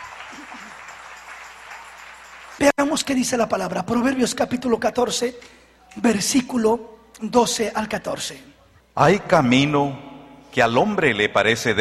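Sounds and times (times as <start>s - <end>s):
church congregation applauding after a sermon: 0.0s - 3.1s
speech: 2.6s - 11.8s.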